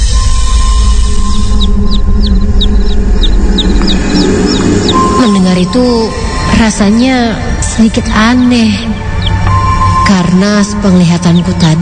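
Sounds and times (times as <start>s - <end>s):
loud low rumble: 0.0s - 11.8s
chicks peeping: 1.2s - 5.4s, 9.2s - 9.6s
speech: 5.7s - 9.1s, 10.2s - 11.8s.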